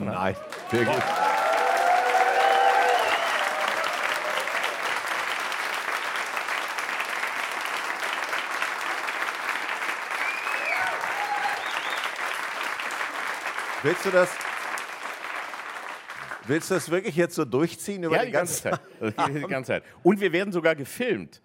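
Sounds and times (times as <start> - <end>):
speech: 0.0 - 1.3, 13.8 - 14.5, 16.5 - 21.4
live audience applauding at a filmed live recording: 0.0 - 17.1
audience whoops and cheers: 0.4 - 4.9, 10.2 - 12.1
laughter: 18.1 - 19.6.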